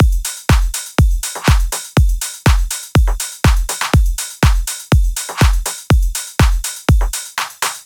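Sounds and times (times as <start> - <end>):
deep house EDM drum kit beat: 0.0 - 7.8.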